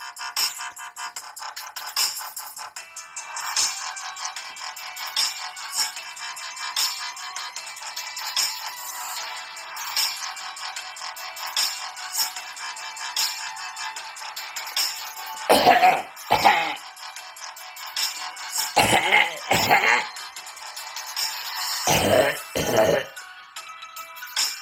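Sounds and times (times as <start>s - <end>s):
person coughing: 15.5s - 16.8s, 18.8s - 20.1s, 21.9s - 23.2s.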